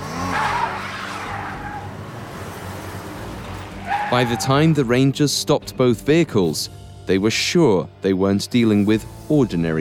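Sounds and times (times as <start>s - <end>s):
car tires squealing in a skid: 0.0s - 2.7s, 3.5s - 4.8s
car engine rumble: 0.0s - 5.2s
speech: 4.1s - 9.7s.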